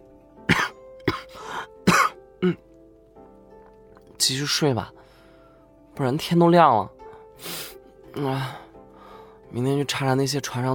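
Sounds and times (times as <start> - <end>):
man coughing: 0.5 - 2.6
speech: 2.4 - 2.7, 4.2 - 5.0, 6.0 - 7.6, 8.2 - 8.6, 9.5 - 10.7.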